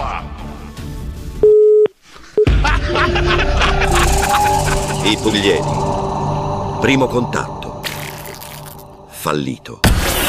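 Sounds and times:
telephone busy tone after a hang-up: 1.4s - 1.9s
laughter: 2.4s - 5.7s
speech: 5.0s - 6.0s, 6.8s - 7.5s, 9.2s - 9.9s.

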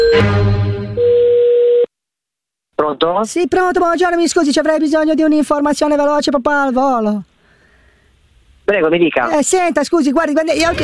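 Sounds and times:
buzzy telephone line tone after the caller hangs up: 0.0s - 1.9s
clean steady telephone line tone: 1.0s - 1.9s
speech: 2.9s - 7.3s, 8.7s - 10.8s.

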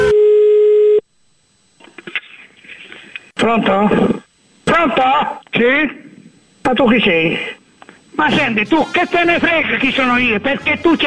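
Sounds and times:
telephone line tone while calling someone back: 0.0s - 1.0s
speech: 3.4s - 4.2s, 4.8s - 6.0s, 6.7s - 7.6s, 8.2s - 11.0s.

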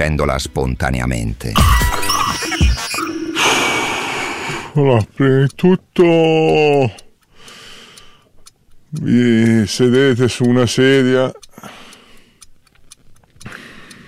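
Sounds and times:
speech: 0.0s - 1.9s, 4.8s - 7.0s, 8.9s - 11.8s
large clock ticking: 0.0s - 14.0s.

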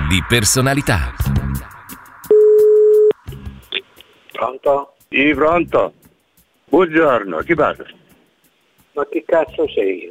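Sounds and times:
speech: 0.1s - 1.7s, 4.4s - 6.0s, 6.7s - 8.0s, 9.0s - 10.0s
ringback tone of an outgoing prank phone call: 2.3s - 3.2s.

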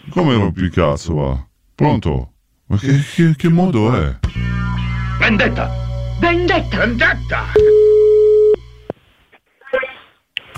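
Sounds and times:
speech: 0.2s - 4.2s, 5.2s - 7.9s
telephone busy signal after the line dropped: 7.6s - 8.6s.

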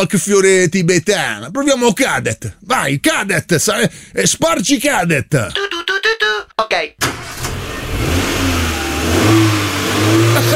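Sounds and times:
speech: 0.0s - 5.7s
1970s car engine revving: 7.0s - 10.5s.

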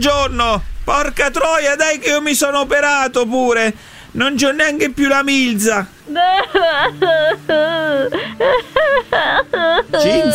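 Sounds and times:
steady low tone: 0.0s - 2.5s
speech: 0.0s - 10.3s
woman crying and wailing: 6.0s - 10.3s.

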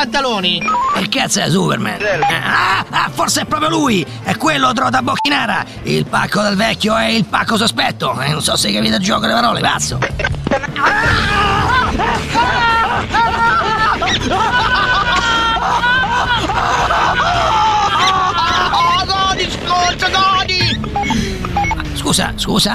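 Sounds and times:
speech: 0.0s - 11.4s, 22.1s - 22.7s
laughter: 0.6s - 1.3s, 2.0s - 4.0s, 8.8s - 22.2s
noisy crowded hubbub: 10.0s - 22.0s
person yelling loudly: 18.6s - 20.6s.

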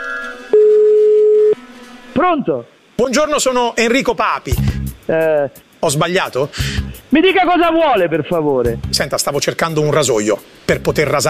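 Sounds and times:
ringing tone of an outgoing telephone call: 0.0s - 1.6s
faint sound: 0.5s - 11.2s
speech: 2.2s - 11.2s.

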